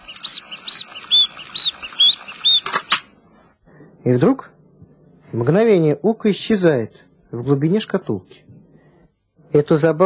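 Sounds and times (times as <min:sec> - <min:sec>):
mechanical bird whistling: 0:00.0 - 0:03.0
speech: 0:04.0 - 0:04.5, 0:05.3 - 0:08.4, 0:09.5 - 0:10.0.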